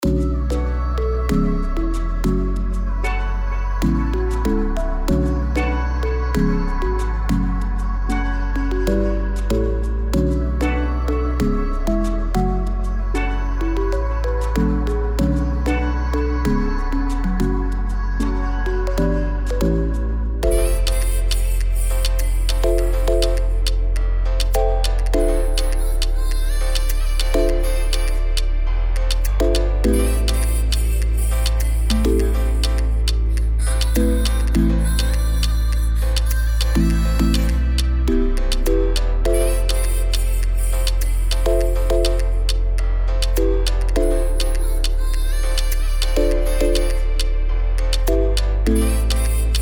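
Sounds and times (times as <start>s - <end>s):
dancehall music: 0.0s - 49.5s.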